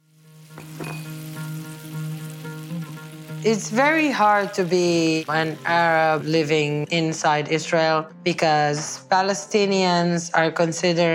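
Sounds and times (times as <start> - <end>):
oil frying in a pan while cooking in a kitchen: 0.0 - 6.9
speech: 3.4 - 11.1.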